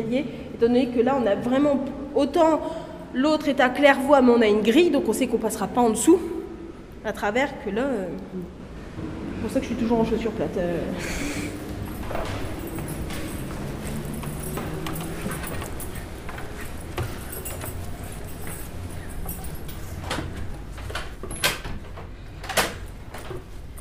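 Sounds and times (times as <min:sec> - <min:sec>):
speech: 0:00.0 - 0:06.3, 0:07.0 - 0:11.5
steady noise: 0:00.0 - 0:23.7
door to the outside being opened: 0:11.6 - 0:23.7
sharp knocks and clacks of a moving door: 0:11.7 - 0:23.5.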